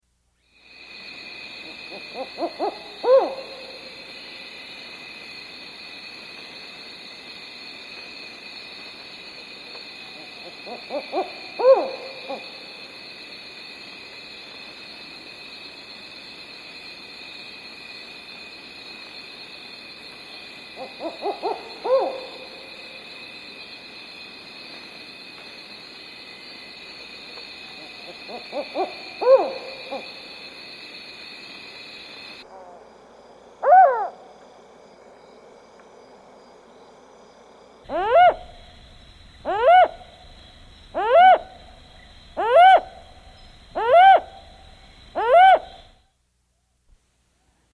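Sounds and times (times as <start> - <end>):
Black-And-White Owl calling: 1.6 - 4.0, 10.2 - 12.6, 20.8 - 22.7, 27.8 - 30.2, 33.6 - 34.2, 37.9 - 38.6, 39.4 - 40.1, 40.9 - 45.9.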